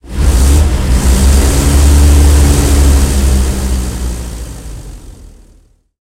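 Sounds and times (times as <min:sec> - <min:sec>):
StuG 40 tank engine under load: 0:00.0 - 0:05.7.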